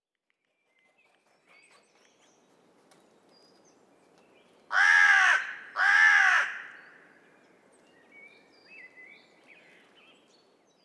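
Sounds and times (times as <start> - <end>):
carrion crow Corvus corone cawing: 4.7 - 7.1.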